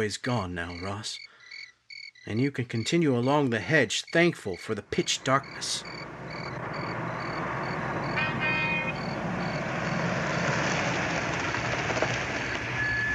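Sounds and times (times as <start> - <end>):
speech: 0.0 - 1.3, 2.2 - 6.4
car pulling up with engine rumbling: 4.8 - 13.1
high squeal: 5.4 - 10.0, 12.4 - 13.1.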